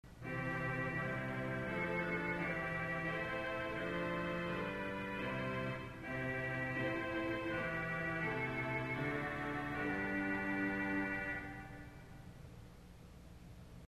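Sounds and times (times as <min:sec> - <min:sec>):
organ Vox Humana stop with tremolo: 0:00.1 - 0:12.2.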